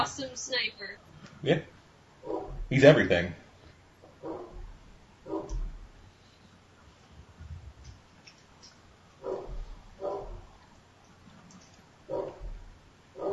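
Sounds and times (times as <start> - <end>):
speech: 0.0 - 1.8, 2.7 - 3.4
dog barking: 2.2 - 2.6, 4.2 - 4.6, 5.2 - 5.6, 9.2 - 10.5, 12.1 - 12.6, 13.2 - 13.3.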